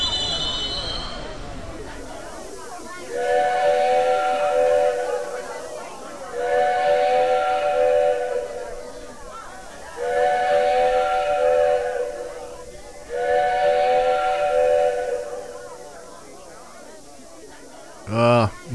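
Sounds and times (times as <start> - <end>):
train whistle blasts signaling a train in distress: 0.0 - 1.7, 3.0 - 16.1.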